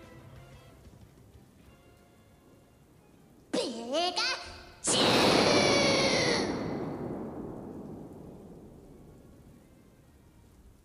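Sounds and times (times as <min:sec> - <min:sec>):
rain: 0:00.0 - 0:10.8
loud thunder crash: 0:04.8 - 0:10.6.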